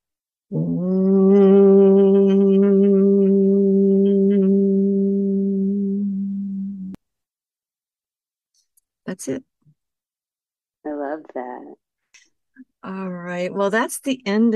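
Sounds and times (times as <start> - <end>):
single voice chanting om for energy vibration: 0.5 - 7.0
speech: 9.1 - 9.5, 11.2 - 11.8, 12.6 - 14.5.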